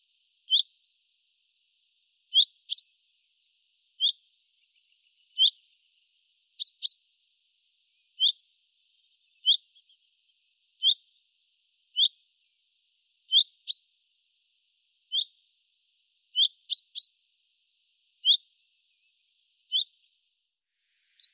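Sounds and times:
bird chirping: 0:00.5 - 0:00.7, 0:02.3 - 0:03.0, 0:04.0 - 0:06.0, 0:06.6 - 0:07.0, 0:09.0 - 0:11.0, 0:13.3 - 0:13.9, 0:16.3 - 0:17.2, 0:18.2 - 0:20.1, 0:21.0 - 0:21.3.

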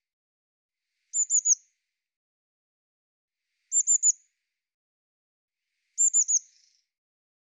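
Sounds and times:
Eurasian blue tit calling: 0:01.1 - 0:01.6, 0:03.7 - 0:04.1, 0:06.0 - 0:06.7.

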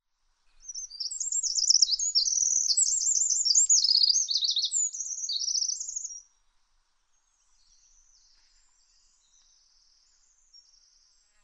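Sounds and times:
bird twittering: 0:00.6 - 0:06.2.

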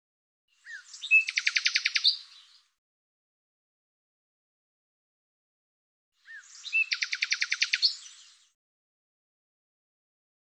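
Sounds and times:
upward bird chirp: 0:00.6 - 0:02.7, 0:06.2 - 0:08.6.

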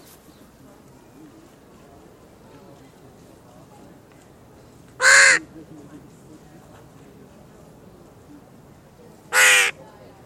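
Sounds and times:
bird cawing: 0:05.0 - 0:05.4, 0:09.3 - 0:09.8.

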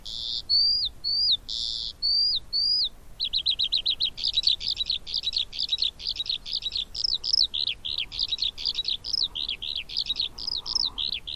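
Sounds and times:
Eurasian skylark song with whistle and fast trill: 0:00.0 - 0:11.3.

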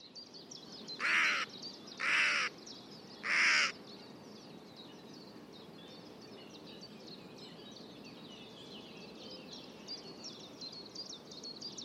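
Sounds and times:
bird harsh rasping caws: 0:01.0 - 0:02.6, 0:03.2 - 0:03.8.

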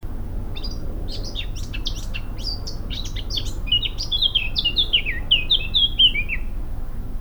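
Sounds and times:
Eurasian blackcap Sylvia atricapilla scratchy twittering warble: 0:00.1 - 0:07.0
Eurasian blackcap Sylvia atricapilla loud clear fluting whistles: 0:00.6 - 0:06.6.

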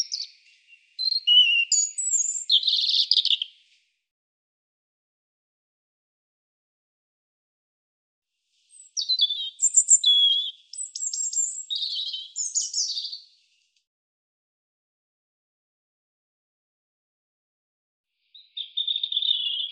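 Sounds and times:
European robin singing: 0:00.0 - 0:03.7, 0:08.7 - 0:13.5, 0:18.2 - 0:19.7.

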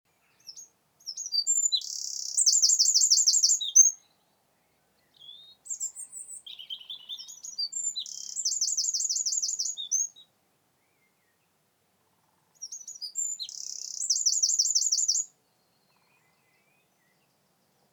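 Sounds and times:
Eurasian wren Troglodytes troglodytes singing: 0:00.4 - 0:04.0, 0:05.1 - 0:10.3, 0:12.6 - 0:15.3.

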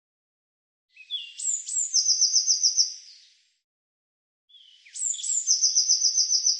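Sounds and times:
Eurasian blue tit singing: 0:00.9 - 0:03.3, 0:04.5 - 0:06.5.

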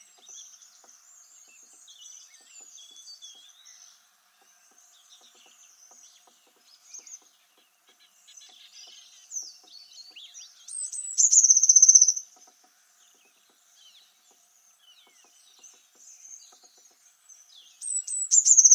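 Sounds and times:
bird chirping: 0:00.0 - 0:18.7.

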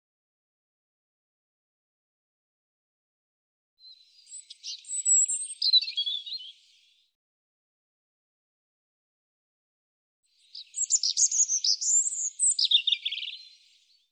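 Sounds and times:
European robin singing: 0:03.8 - 0:07.0, 0:10.3 - 0:14.1.

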